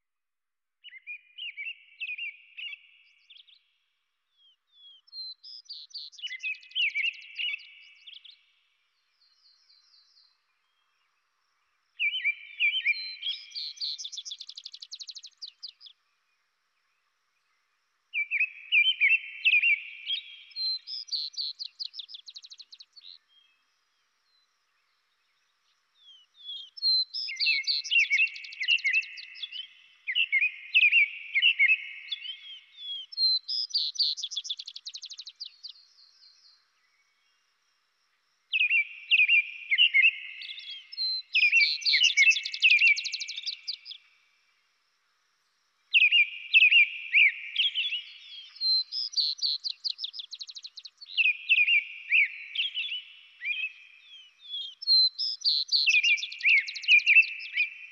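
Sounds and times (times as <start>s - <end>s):
robin singing: 0.8s - 11.2s, 12.0s - 16.0s, 18.1s - 37.4s, 38.5s - 44.2s, 45.9s - 57.9s
vesper sparrow singing: 4.4s - 8.5s, 12.0s - 16.0s, 18.2s - 23.4s, 26.0s - 36.4s, 38.5s - 44.1s, 45.9s - 57.9s.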